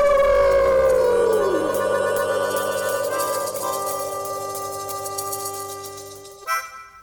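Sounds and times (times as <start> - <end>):
people howling like wolves: 0.0 - 4.4.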